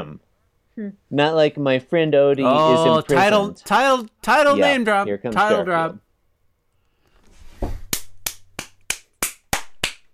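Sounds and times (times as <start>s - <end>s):
speech: 0.0s - 6.0s
sharp hand claps: 7.8s - 10.1s.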